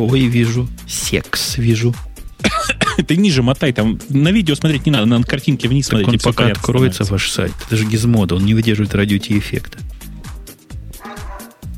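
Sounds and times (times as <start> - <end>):
speech: 0.0 - 2.1, 3.0 - 9.9
dog barking: 11.0 - 11.7.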